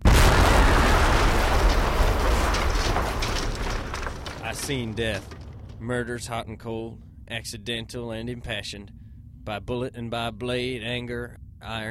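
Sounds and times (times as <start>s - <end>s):
dynamite blast: 0.0s - 5.8s
loud roaring rumble: 0.0s - 5.9s
speech: 4.7s - 11.8s.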